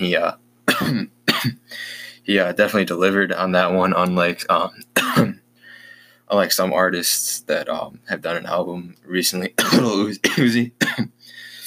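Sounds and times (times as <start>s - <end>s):
speech: 0.0s - 5.4s, 6.3s - 11.2s
person coughing: 0.7s - 1.7s, 5.0s - 5.4s, 9.6s - 11.6s.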